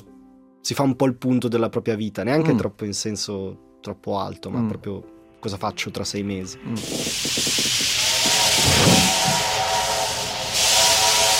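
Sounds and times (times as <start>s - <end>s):
speech: 0.7s - 7.2s
steam train chuffing: 6.8s - 11.3s.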